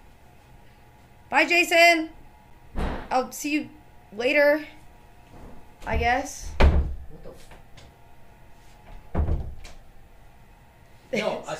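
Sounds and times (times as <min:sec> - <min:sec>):
speech: 0:01.3 - 0:02.2, 0:03.1 - 0:04.8, 0:05.8 - 0:06.5, 0:11.1 - 0:11.5
door creaking: 0:05.3 - 0:07.6, 0:08.9 - 0:09.8
door being tugged and rattled: 0:05.8 - 0:07.1, 0:09.1 - 0:09.8.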